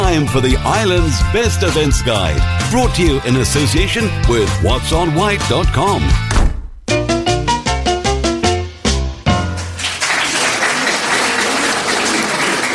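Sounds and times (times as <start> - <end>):
punchy repeated musical chords: 0.0 - 9.6
speech: 0.1 - 6.5
crowd giving loud applause: 9.6 - 12.7.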